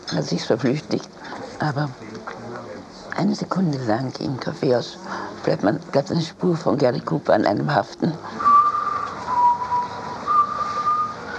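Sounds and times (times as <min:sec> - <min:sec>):
steady hiss: 0:00.0 - 0:11.3
speech: 0:00.1 - 0:02.2, 0:03.2 - 0:08.4
person whistling a church hymn melody: 0:08.2 - 0:11.3.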